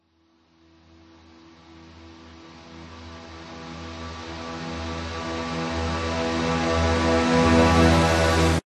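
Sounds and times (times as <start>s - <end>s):
cinematic riser: 4.3s - 8.6s.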